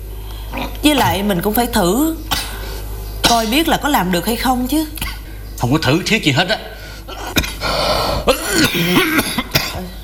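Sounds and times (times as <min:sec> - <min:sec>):
speech: 0:00.8 - 0:02.4, 0:03.3 - 0:06.6, 0:07.7 - 0:10.0
person with stone dust in the lungs coughing: 0:07.3 - 0:07.7, 0:08.3 - 0:10.0
rough throat clearing: 0:08.3 - 0:10.0.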